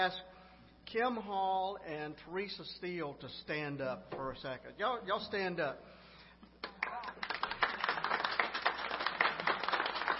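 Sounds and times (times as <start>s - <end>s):
speech: 0.0s - 0.3s, 0.9s - 6.0s
audience clapping: 6.6s - 10.1s.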